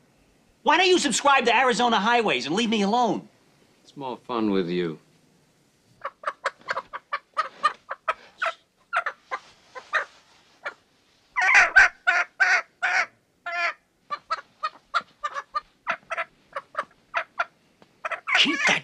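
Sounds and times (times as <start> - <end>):
speech: 0.6 - 3.3, 3.9 - 5.0
chicken squawking and clucking: 6.0 - 18.8.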